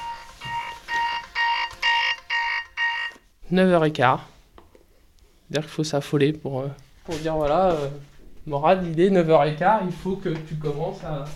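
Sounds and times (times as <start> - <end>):
alarm clock ringing in short bright electronic bursts: 0.0 - 3.2
speech: 3.5 - 4.3, 5.5 - 11.3.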